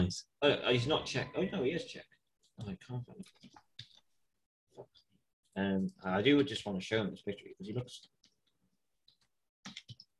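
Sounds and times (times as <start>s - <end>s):
speech: 0.0s - 3.6s, 5.6s - 8.2s
typing on a computer keyboard: 9.1s - 10.1s.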